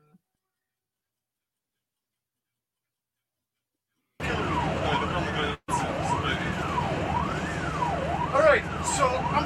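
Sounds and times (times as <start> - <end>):
ambulance siren heard from inside a Russian medical-disaster ambulance in Belgorod region: 4.2 - 9.4
deep ambulance engine and road rumble: 4.2 - 9.4.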